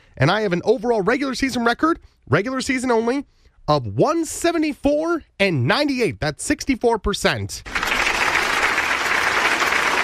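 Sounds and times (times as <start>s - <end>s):
speech: 0.2s - 7.8s
many hands clapping: 7.7s - 10.0s.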